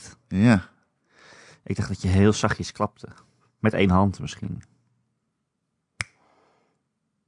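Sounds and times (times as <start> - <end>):
speech: 0.3 - 0.7, 1.7 - 4.7
finger snap: 6.0 - 6.2.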